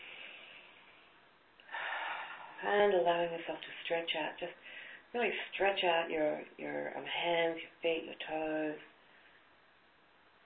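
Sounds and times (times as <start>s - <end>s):
slow deep breath drawn in: 0.0s - 2.6s, 4.6s - 5.1s
speech: 2.6s - 8.9s.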